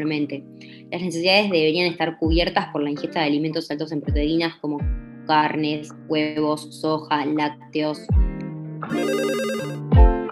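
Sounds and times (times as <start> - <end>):
speech: 0.0 - 8.2
electronic telephone ringtone for an incoming listener call: 8.9 - 9.9.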